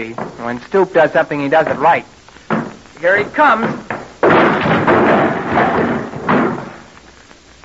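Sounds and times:
speech: 0.0 - 2.2, 3.0 - 3.9
wood splintering: 0.0 - 7.6
heavy door forced open by shoulder: 1.7 - 7.0.

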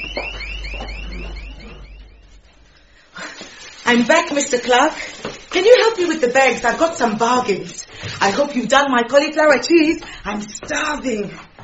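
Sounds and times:
panic alarm rising electronic chirps: 0.0 - 3.1
low hum: 0.0 - 3.2
speech: 3.9 - 11.5.

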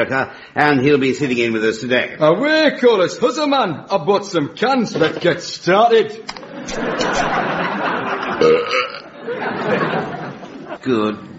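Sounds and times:
speech: 0.0 - 7.6, 10.8 - 11.3
laughter: 6.3 - 10.9
long loud gurgling belch: 8.4 - 9.1.

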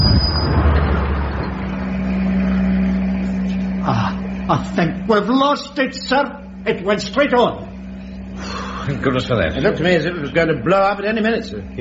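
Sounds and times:
road rumble of a van driving: 0.0 - 5.1
van engine drone: 0.0 - 11.7
speech: 3.9 - 7.7, 8.4 - 11.7.

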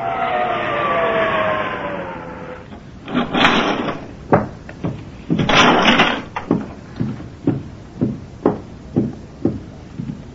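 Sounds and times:
hotel elevator door sliding with a mechanical whine: 0.0 - 4.5, 5.3 - 6.8
hollow clunks and knocks of an elevator ride: 2.7 - 10.2.

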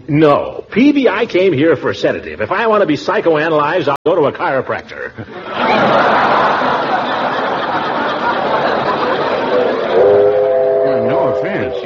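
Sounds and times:
speech: 0.1 - 7.0, 11.4 - 11.8
laughter: 5.1 - 11.8
train rumbling past with clattering roar: 9.5 - 11.8.

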